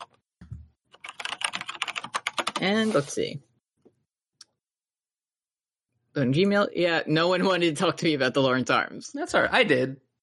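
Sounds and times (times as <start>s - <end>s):
rapid computer keyboard typing: 0.0s - 2.7s
speech: 2.6s - 3.5s, 6.2s - 10.0s.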